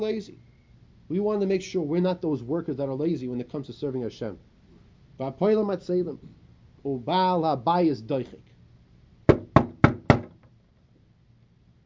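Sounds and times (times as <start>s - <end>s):
speech: 0.0s - 0.5s, 1.1s - 4.5s, 5.2s - 8.5s
sharp knocks on a wooden table: 9.3s - 10.4s.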